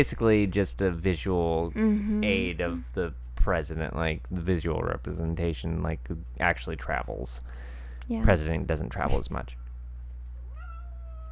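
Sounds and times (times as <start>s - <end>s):
speech: 0.0s - 9.6s
low steady hum: 0.0s - 11.2s
cat meowing: 10.5s - 11.2s.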